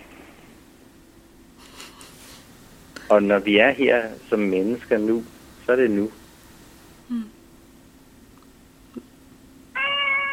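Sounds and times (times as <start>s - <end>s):
speech: 3.1s - 6.2s, 7.1s - 7.4s
male house cat meowing: 9.7s - 10.3s.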